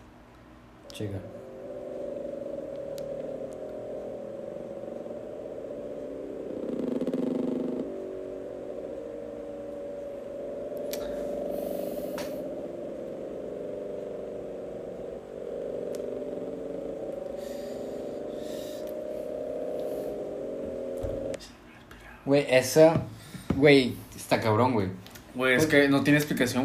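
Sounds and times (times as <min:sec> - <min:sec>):
low-frequency underwater ocean drone: 0:00.8 - 0:21.4
speech: 0:00.9 - 0:01.4, 0:22.3 - 0:26.6.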